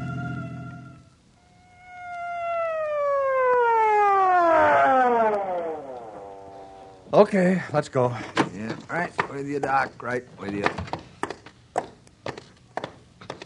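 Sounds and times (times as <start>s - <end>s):
emergency vehicle siren wailing: 0.0s - 7.1s
speech: 7.2s - 11.0s.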